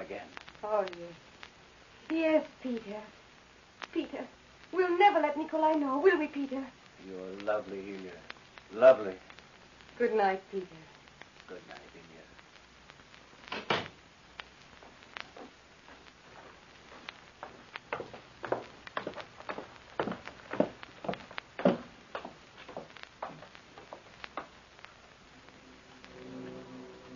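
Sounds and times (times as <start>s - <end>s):
speech: 0.7s - 1.3s, 2.1s - 3.2s, 3.9s - 9.3s, 10.0s - 10.9s, 11.5s - 11.9s
man's footsteps thudding down a staircase: 14.8s - 24.6s.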